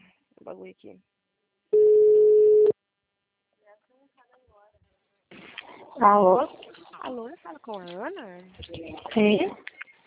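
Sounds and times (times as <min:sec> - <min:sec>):
speech: 0:00.5 - 0:01.2, 0:05.3 - 0:09.7
outgoing telephone call ringback tone: 0:01.8 - 0:02.7.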